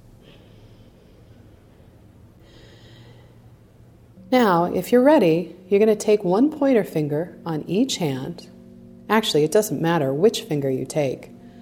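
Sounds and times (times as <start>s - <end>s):
low steady hum: 0.0s - 11.6s
slow deep breathing in and out through the nose: 0.2s - 3.6s
speech: 4.3s - 8.5s, 9.1s - 11.3s.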